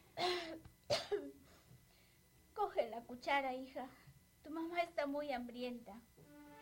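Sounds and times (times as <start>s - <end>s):
woman coughing: 0.2s - 1.4s
speech: 2.8s - 6.2s.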